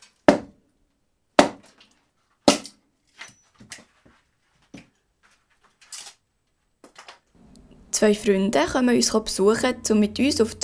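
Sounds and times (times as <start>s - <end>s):
axe chopping firewood into small pieces at a mountain site: 0.3s - 0.6s, 1.4s - 1.8s, 2.5s - 2.8s
firewood pieces falling and clattering: 1.6s - 6.2s, 6.8s - 7.3s
speech: 8.0s - 10.6s.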